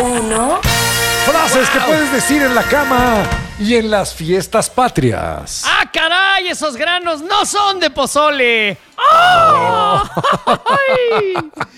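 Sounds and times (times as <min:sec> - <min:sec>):
speech: 0:00.1 - 0:11.7
laughter: 0:01.3 - 0:02.6, 0:09.2 - 0:11.7
person attempting a mariachi-style grito yell: 0:09.0 - 0:10.1.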